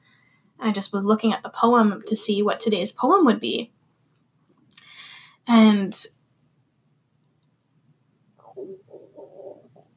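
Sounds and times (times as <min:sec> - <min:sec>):
speech: 0:00.6 - 0:03.8, 0:05.5 - 0:06.2
stomach rumbling with low bubbly gurgling: 0:08.4 - 0:09.9.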